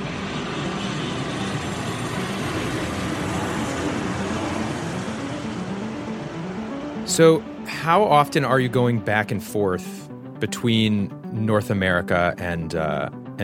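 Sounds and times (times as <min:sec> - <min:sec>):
airplane engine droning in flight: 0:00.0 - 0:10.4
speech: 0:07.1 - 0:13.4.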